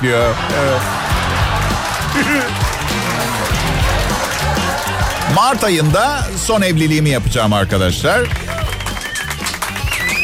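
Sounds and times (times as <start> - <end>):
speech: 0.0 - 1.0, 2.2 - 4.0, 5.3 - 8.6
laughter: 0.0 - 6.3
one person clapping hands: 1.6 - 5.9, 8.2 - 10.2.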